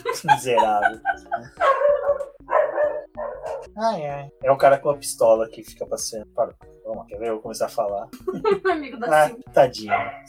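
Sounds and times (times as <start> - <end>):
laughter: 0.0 - 2.2, 8.1 - 8.9
speech: 0.2 - 1.7, 3.8 - 10.2
dog barking: 1.6 - 3.7, 9.8 - 10.2.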